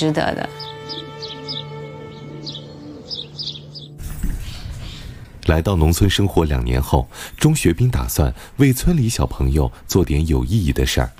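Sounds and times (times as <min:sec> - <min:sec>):
speech: 0:00.0 - 0:01.0, 0:05.5 - 0:11.1
birds chirping in the early morning: 0:00.0 - 0:08.8.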